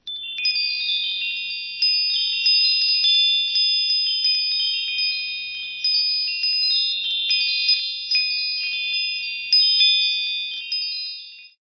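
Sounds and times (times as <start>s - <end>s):
little Woodstock Gregorian chime: 0.0s - 11.6s.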